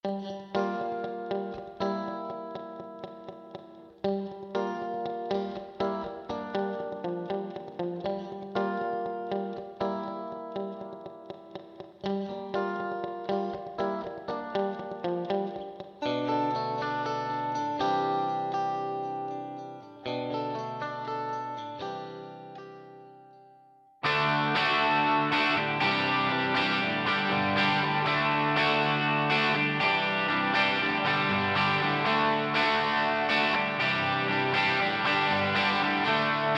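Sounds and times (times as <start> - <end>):
guitar: 0.0 - 36.5.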